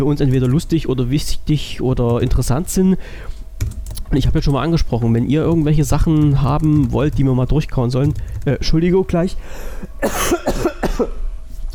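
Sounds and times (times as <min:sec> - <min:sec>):
speech: 0:00.0 - 0:11.7
person clearing throat: 0:10.0 - 0:11.2
person coughing: 0:10.0 - 0:11.2.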